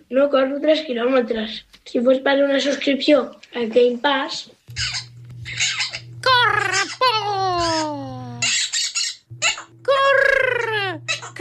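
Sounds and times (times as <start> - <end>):
speech: 0.1 - 5.0
parrot squawking: 4.7 - 9.8, 10.5 - 11.3.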